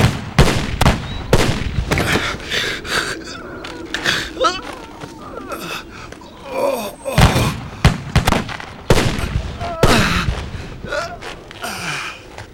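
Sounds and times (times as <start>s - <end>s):
rifle volley from a firing squad at an execution: 0.0s - 2.0s, 7.2s - 10.6s
voices: 1.2s - 8.0s, 9.0s - 12.5s
people gasping: 1.9s - 8.0s, 9.2s - 12.5s.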